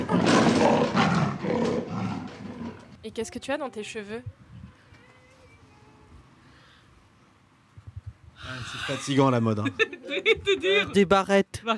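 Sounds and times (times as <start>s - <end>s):
big cat roaring: 0.0s - 2.9s
speech: 3.2s - 4.4s, 8.5s - 11.7s
laughter: 8.7s - 11.0s.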